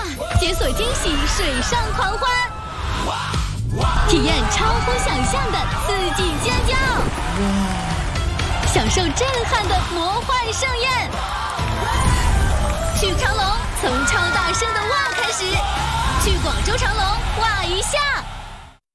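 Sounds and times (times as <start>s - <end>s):
crowd screaming with excitement: 0.2s - 18.8s.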